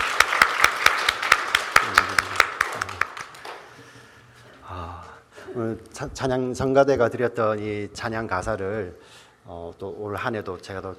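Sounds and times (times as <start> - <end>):
church audience clapping rhythmically during a worship service: 0.0 - 4.1
speech: 5.6 - 10.9.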